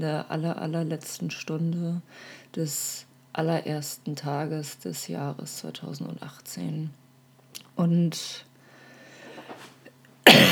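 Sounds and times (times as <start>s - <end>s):
speech: 0.0s - 7.0s, 7.8s - 8.5s
faint low hum: 0.0s - 10.5s
harsh cough: 10.2s - 10.5s.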